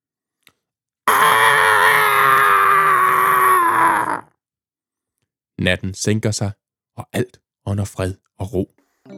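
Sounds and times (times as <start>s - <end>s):
long loud wailing scream: 1.1s - 4.3s
speech: 5.6s - 8.8s.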